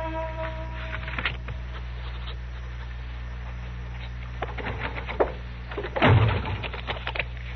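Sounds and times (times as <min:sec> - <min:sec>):
rustles: 0:00.4 - 0:07.5
door slamming shut: 0:05.8 - 0:06.8.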